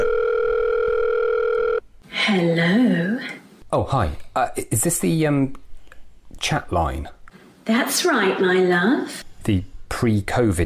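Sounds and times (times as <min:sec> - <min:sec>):
telephone dial tone: 0:00.0 - 0:01.8
speech: 0:02.3 - 0:03.0, 0:03.7 - 0:05.6, 0:06.4 - 0:10.6.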